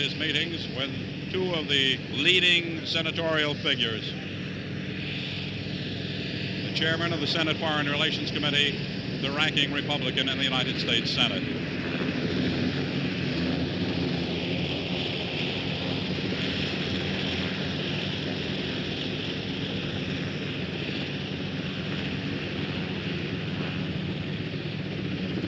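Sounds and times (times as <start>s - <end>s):
speech: 0.0s - 4.3s, 6.8s - 11.7s
helicopter engine and rotors roaring: 0.0s - 25.4s.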